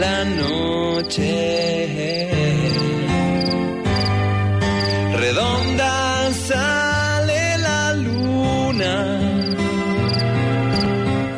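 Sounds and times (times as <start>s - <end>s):
speech: 0.0s - 2.4s
mellow instrumental music with slow chord changes: 0.0s - 11.3s
crickets chirping at night: 0.3s - 5.8s, 7.9s - 11.0s.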